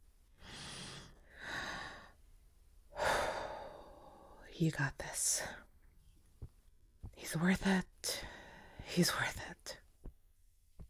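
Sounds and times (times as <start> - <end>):
person taking long airy deep breaths: 0.4 - 2.2, 2.9 - 4.4
speech: 4.6 - 5.6, 7.3 - 8.3, 8.9 - 9.6.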